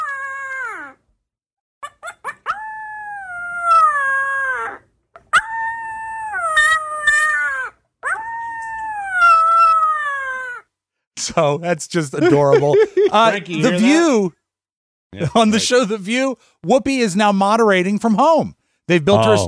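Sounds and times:
young puppy howling: 0:00.0 - 0:01.0, 0:02.0 - 0:10.7
speech: 0:11.2 - 0:14.4, 0:15.2 - 0:19.4
laughter: 0:12.0 - 0:14.1, 0:19.1 - 0:19.4.

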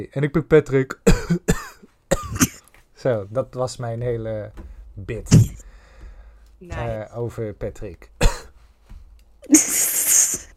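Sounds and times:
speech: 0:00.0 - 0:01.4, 0:03.0 - 0:05.7, 0:06.6 - 0:08.1
small cough: 0:01.1 - 0:02.6, 0:08.2 - 0:08.6, 0:09.5 - 0:10.5.

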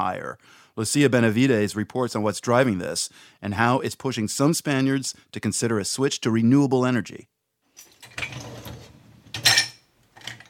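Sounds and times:
speech: 0:00.0 - 0:07.4
dishes clattering while loading a dishwasher: 0:07.8 - 0:10.4.

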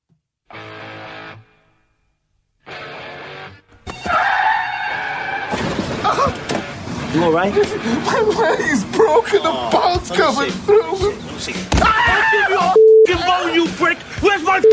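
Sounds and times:
car crash: 0:03.9 - 0:06.7
car tires screeching: 0:04.0 - 0:07.1
speech: 0:07.1 - 0:14.7.

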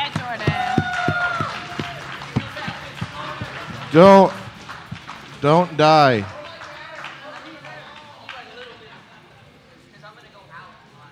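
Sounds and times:
audience clapping rhythmically: 0:00.0 - 0:08.8
speech: 0:03.9 - 0:04.4, 0:05.4 - 0:06.4.

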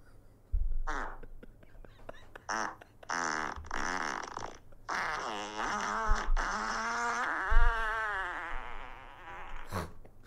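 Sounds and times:
recorded farts played from a group chat: 0:00.8 - 0:01.2, 0:02.5 - 0:10.0.

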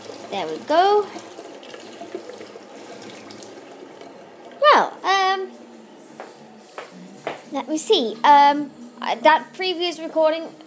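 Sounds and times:
running tap water rinsing out a coffee cup: 0:00.0 - 0:04.6
speech: 0:00.3 - 0:01.3, 0:07.7 - 0:10.6.

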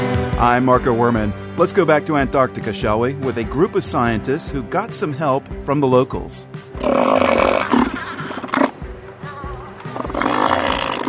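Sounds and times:
speech: 0:00.4 - 0:07.8
elephant seal roaring in Antarctica: 0:06.8 - 0:11.0.

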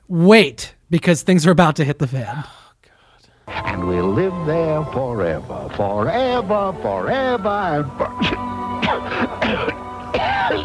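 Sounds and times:
speech: 0:00.1 - 0:02.6, 0:03.5 - 0:09.7
harsh rasping coughs: 0:08.0 - 0:10.6.

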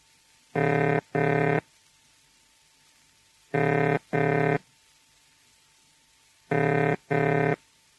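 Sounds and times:
telephone ringing tone: 0:00.6 - 0:01.6, 0:03.6 - 0:04.6, 0:06.5 - 0:07.6.

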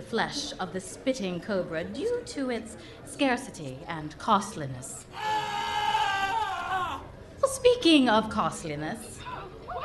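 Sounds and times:
speech: 0:00.0 - 0:05.4, 0:07.6 - 0:09.2
man screaming in a kitchen: 0:05.1 - 0:07.1.

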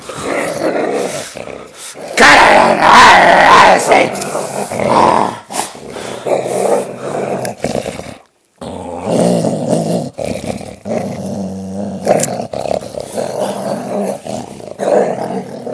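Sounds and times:
dog growling while tugging a sock: 0:00.0 - 0:15.7
person shouting: 0:02.2 - 0:04.1
speech: 0:03.9 - 0:04.2.

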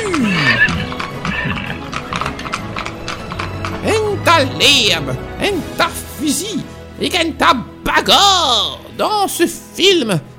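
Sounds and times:
horse whinnying: 0:00.0 - 0:04.0
horse hooves clattering: 0:00.0 - 0:05.1
speech: 0:04.4 - 0:10.3.

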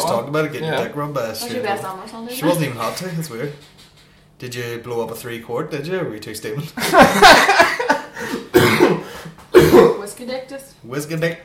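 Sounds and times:
speech: 0:00.1 - 0:09.0, 0:10.2 - 0:11.4
laughter: 0:06.8 - 0:08.4
person coughing harshly: 0:08.3 - 0:10.0.

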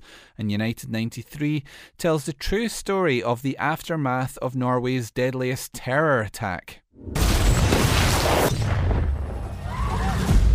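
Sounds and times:
speech: 0:00.4 - 0:07.4
bomb explosion boom in a movie trailer: 0:07.0 - 0:10.5.

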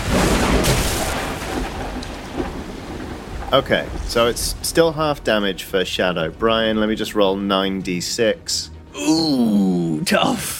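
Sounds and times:
lightning bolt thunder crack sound effect: 0:00.0 - 0:07.4
rain-like hiss: 0:00.0 - 0:08.1
speech: 0:03.5 - 0:10.5.

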